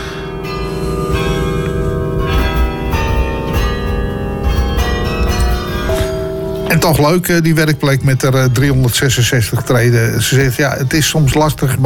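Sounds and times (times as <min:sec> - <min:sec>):
carillon bells in the Dom church tower in Utrecht playing a melody: 0:00.0 - 0:10.1
speech: 0:06.8 - 0:11.8.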